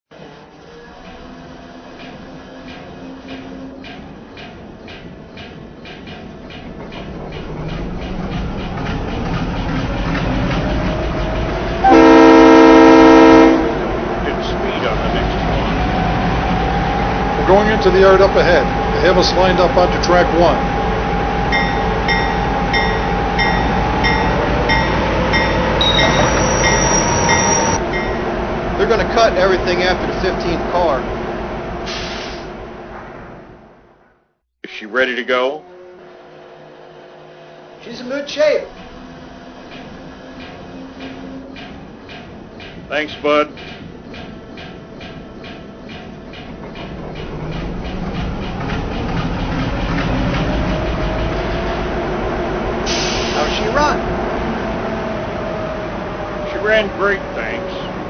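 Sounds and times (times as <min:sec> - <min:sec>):
GE U25B diesel locomotive: 0:00.1 - 0:58.0.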